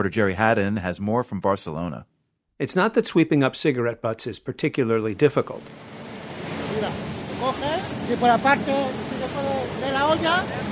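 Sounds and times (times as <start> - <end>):
speech: 0.0 - 6.0, 6.8 - 10.6
water truck spraying down the street: 5.0 - 10.6.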